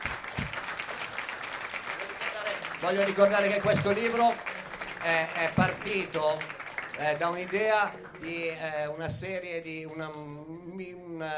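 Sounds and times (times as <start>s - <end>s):
audience applauding at a book event: 0.0s - 9.0s
speech: 2.8s - 11.3s.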